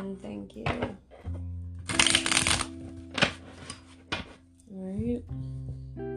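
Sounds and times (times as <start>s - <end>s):
speech: 0.0s - 1.4s, 4.7s - 6.1s
deck of tarot cards being shuffled: 1.9s - 4.4s.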